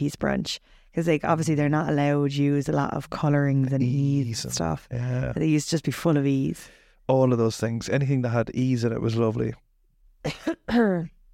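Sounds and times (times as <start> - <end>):
speech: 0.0 - 9.6, 10.2 - 11.2
person coughing dryly: 10.3 - 11.1.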